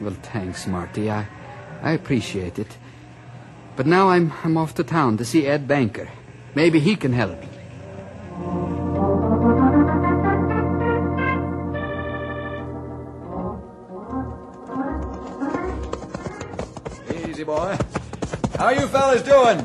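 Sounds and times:
speech: 0.0s - 2.9s, 3.8s - 7.5s, 18.6s - 19.6s
orchestral music: 8.3s - 16.9s
hooves of a fast ridden horse clip-clopping: 14.2s - 19.6s.

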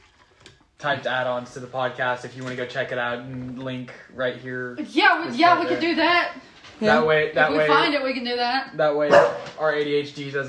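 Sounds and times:
speech: 0.8s - 10.4s
dog barking with a whiny howling tone: 9.1s - 9.6s.

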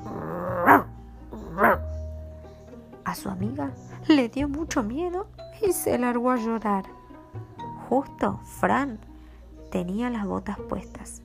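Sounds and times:
dog barking loudly: 0.1s - 1.9s
speech: 3.2s - 7.0s, 7.9s - 9.1s, 9.7s - 11.2s.

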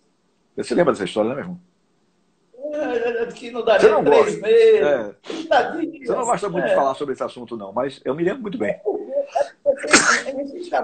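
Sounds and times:
speech: 0.6s - 1.7s, 2.8s - 10.8s
person sneezing close to the microphone: 9.4s - 10.4s.

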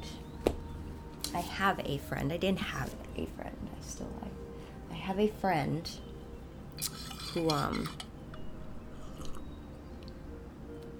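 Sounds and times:
speech: 1.3s - 6.0s, 6.8s - 8.0s
person slurping tea: 9.0s - 9.4s.

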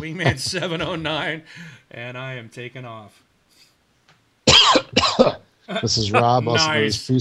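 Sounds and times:
speech: 0.0s - 3.2s, 4.9s - 7.2s
person coughing loudly and harshly: 4.5s - 5.4s.

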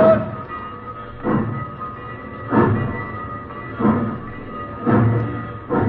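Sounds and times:
train rolling along tracks: 0.0s - 5.8s
train wheels knocking: 1.1s - 5.8s.

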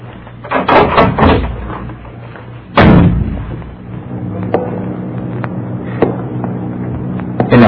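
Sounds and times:
low hum: 0.0s - 7.6s
wooden door pushed open with knocking rattles: 0.5s - 1.9s
heavy thud: 0.5s - 2.0s, 2.7s - 4.8s.

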